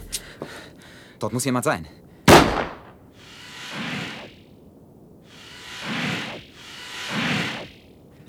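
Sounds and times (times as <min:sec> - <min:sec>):
speech: 0:01.2 - 0:02.0
rifle shot: 0:02.3 - 0:03.0
whooshing swells: 0:03.2 - 0:08.2.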